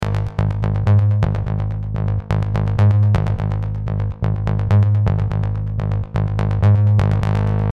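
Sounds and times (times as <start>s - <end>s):
bass note in G: 0.0s - 7.7s.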